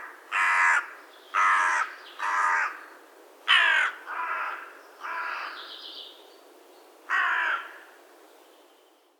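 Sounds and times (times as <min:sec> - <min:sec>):
carrion crow giving harsh caws: 0:00.0 - 0:02.9, 0:03.5 - 0:05.6, 0:07.1 - 0:07.9.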